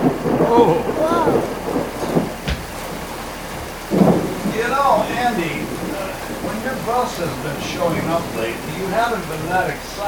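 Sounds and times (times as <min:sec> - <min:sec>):
heavy rain pouring down: 0:00.0 - 0:10.0
rumbling thunder with a sharp crack: 0:00.0 - 0:10.0
voices talking faintly beneath the downpour: 0:00.0 - 0:10.0
speech: 0:00.5 - 0:01.6, 0:07.2 - 0:10.0.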